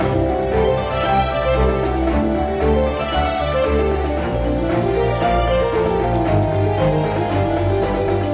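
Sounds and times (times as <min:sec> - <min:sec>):
big win jingle music: 0:00.0 - 0:08.3.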